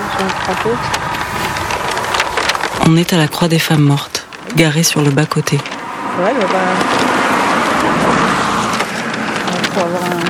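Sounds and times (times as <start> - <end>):
cars speeding past on a roadside with heavy traffic: 0.0 - 10.2
speech: 0.2 - 1.2, 2.9 - 7.1, 7.9 - 8.5, 9.8 - 10.2.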